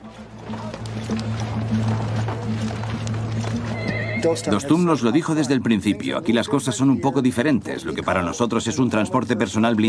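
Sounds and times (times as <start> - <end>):
several horses galloping: 0.0 - 6.2
speech: 1.1 - 1.4, 4.2 - 9.8
horse neighing loudly: 3.5 - 5.0.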